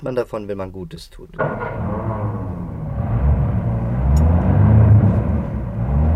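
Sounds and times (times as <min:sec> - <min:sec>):
speech: 0:00.0 - 0:02.0
car engine sputtering and failing to start, getting too much air: 0:01.4 - 0:06.1.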